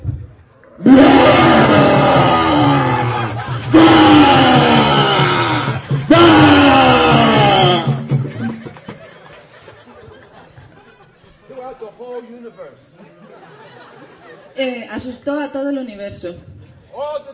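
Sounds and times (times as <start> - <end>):
loud rumbling roar from a pillar: 0.8 - 8.1
laughter: 1.2 - 5.8, 6.4 - 11.8, 12.9 - 14.6
speech: 15.5 - 17.3.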